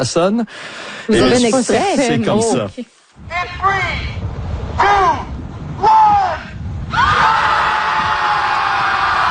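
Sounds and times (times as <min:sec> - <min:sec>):
speech: 0:00.0 - 0:05.2
crowd of about 300 people screaming together beside a lake: 0:06.9 - 0:09.2.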